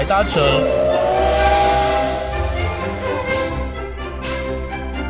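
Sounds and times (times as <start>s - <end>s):
continuous low rumble of a departing train: 0.0s - 4.9s
steam train whistle: 0.4s - 4.6s.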